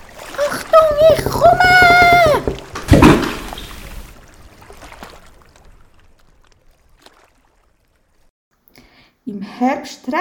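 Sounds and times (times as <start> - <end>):
splashing water in a beaver pond: 0.0 - 8.3
speech: 9.6 - 10.1.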